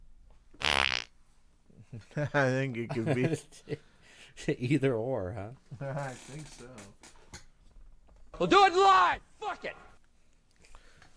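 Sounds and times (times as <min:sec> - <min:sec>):
short buzzy wet fart-like burst: 0:00.6 - 0:01.2
speech: 0:01.9 - 0:07.2, 0:08.4 - 0:09.9.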